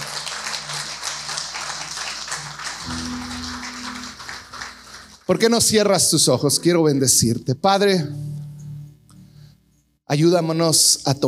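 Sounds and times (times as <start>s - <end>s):
large crowd applauding: 0.0s - 6.0s
speech: 5.3s - 8.2s, 10.1s - 11.2s.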